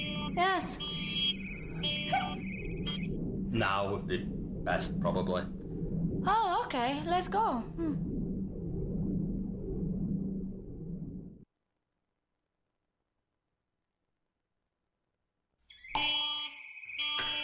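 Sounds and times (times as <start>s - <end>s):
harsh buzzing alarm: 0.0s - 11.4s, 15.8s - 17.4s
low rumbling: 0.0s - 11.4s
speech: 0.4s - 1.0s, 3.6s - 5.6s, 6.2s - 8.1s.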